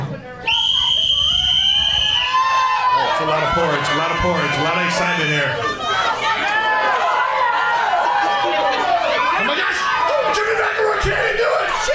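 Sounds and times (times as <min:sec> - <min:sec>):
faint murmur: 0:00.0 - 0:11.9
long shrill whistle blast to start the game: 0:00.5 - 0:02.6
speech: 0:03.6 - 0:06.0.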